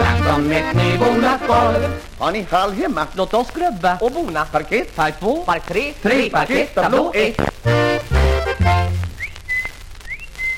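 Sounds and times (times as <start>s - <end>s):
speech: 0.3s - 9.0s
person whistling to call a bird dog: 9.1s - 10.5s.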